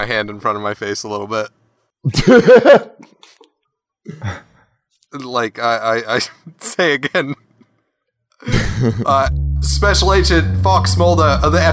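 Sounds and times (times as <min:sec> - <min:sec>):
speech: 0:00.0 - 0:03.4, 0:04.0 - 0:04.5, 0:05.1 - 0:07.4, 0:08.4 - 0:11.7
laughter: 0:02.1 - 0:03.3, 0:08.4 - 0:09.3
person coughing: 0:04.1 - 0:04.5.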